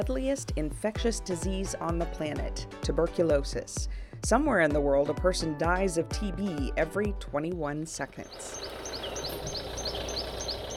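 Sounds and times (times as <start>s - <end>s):
speech: 0.0s - 9.6s
high repeating bird chirps in African wildlife ambience: 8.2s - 10.7s.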